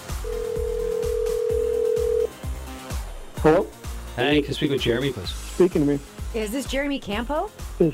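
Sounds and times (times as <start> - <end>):
phone dialing tones: 0.3 - 2.3
speech: 3.4 - 7.9.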